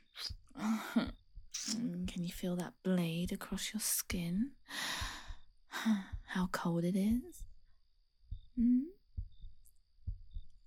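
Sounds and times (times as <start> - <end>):
quickening heartbeat thumping in double beats: 0.1 - 7.6, 8.2 - 10.6
speech: 2.2 - 4.6, 5.8 - 7.5, 8.6 - 8.9
brief hummed vocal sound: 8.6 - 9.0.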